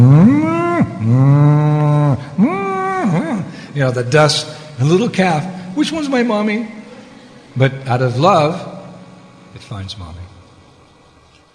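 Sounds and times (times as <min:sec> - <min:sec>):
cows mooing: 0:00.0 - 0:03.5
speech: 0:03.9 - 0:06.8, 0:07.6 - 0:08.7, 0:09.5 - 0:10.3.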